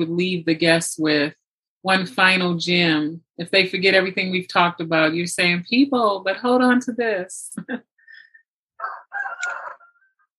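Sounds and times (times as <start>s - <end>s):
speech: 0.0s - 7.9s
rooster crowing: 8.8s - 10.3s.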